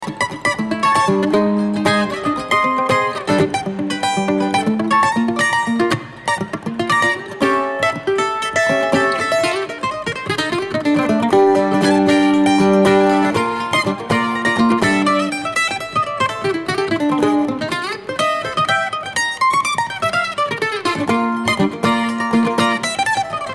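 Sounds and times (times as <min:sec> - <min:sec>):
mandolin playing: 0:00.0 - 0:23.5.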